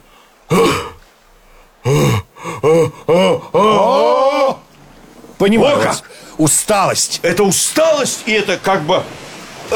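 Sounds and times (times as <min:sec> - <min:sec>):
person performing an exaggerated yawn: 0:01.8 - 0:04.6
speech: 0:02.6 - 0:04.0, 0:05.4 - 0:09.7.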